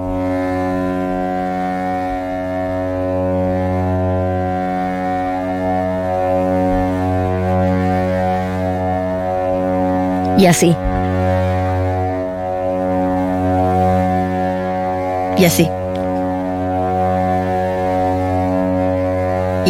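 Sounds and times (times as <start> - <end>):
ambient drone music of layered steady tones: 0.0 - 19.6
speech: 10.4 - 11.0, 15.4 - 15.8.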